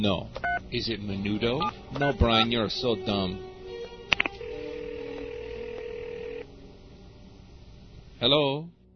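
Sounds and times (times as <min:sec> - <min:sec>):
speech: 0:00.0 - 0:03.5, 0:08.2 - 0:08.8
electronic phone ringing tone on the line: 0:04.3 - 0:06.5.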